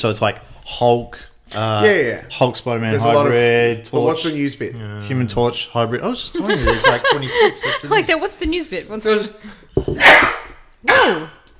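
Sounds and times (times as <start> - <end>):
speech: 0.0 - 11.4
laughter: 6.4 - 8.2
cough-sneeze: 10.0 - 11.4.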